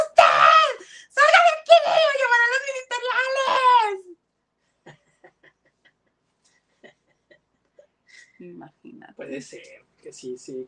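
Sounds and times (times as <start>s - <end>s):
person acting out shrill strained screams: 0.0s - 4.1s
speech: 8.4s - 10.6s.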